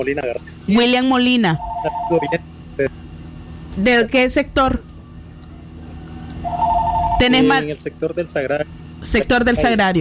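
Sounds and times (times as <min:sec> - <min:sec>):
speech: 0:00.0 - 0:03.0, 0:03.8 - 0:04.9, 0:07.2 - 0:09.9
low hum: 0:00.0 - 0:09.9
telephone with bright warbling electronic ring: 0:01.6 - 0:02.4, 0:06.4 - 0:07.6.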